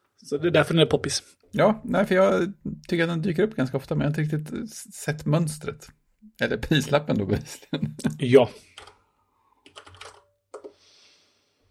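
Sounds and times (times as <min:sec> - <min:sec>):
speech: 0:00.2 - 0:08.9
typing on a computer keyboard while entering a web address: 0:08.8 - 0:09.0, 0:09.6 - 0:10.8.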